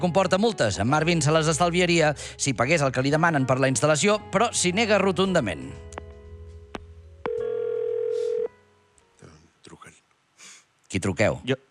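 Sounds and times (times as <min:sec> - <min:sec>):
speech: 0:00.0 - 0:06.0, 0:10.9 - 0:11.7
loud steady telephone dial tone: 0:07.3 - 0:08.5.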